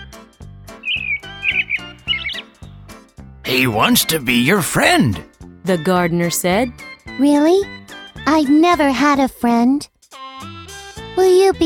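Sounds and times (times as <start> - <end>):
robin singing chirps and whistled trills: 0.7 - 5.2
speech: 3.5 - 9.9, 11.2 - 11.6.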